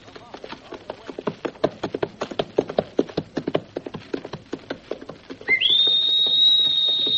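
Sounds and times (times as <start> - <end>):
clip-clopping hoofbeats: 0.0 - 7.1
shrill whistle: 5.5 - 7.1.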